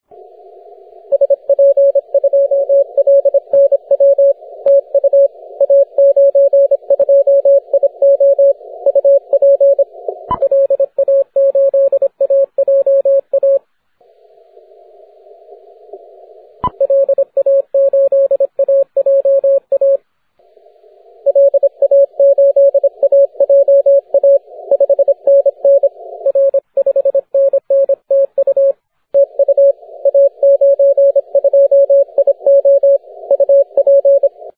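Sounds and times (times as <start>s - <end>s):
CW Morse code tones on the 15m band: 1.1s - 13.6s, 16.6s - 20.0s, 21.3s - 34.4s.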